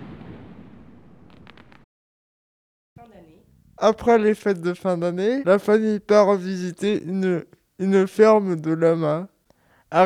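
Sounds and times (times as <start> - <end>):
low rumble of firework booms: 0.0 - 1.8
fireworks exploding on Christmas Eve: 0.0 - 1.9
sharp crackling firework pops: 0.0 - 1.9
speech: 3.8 - 9.3.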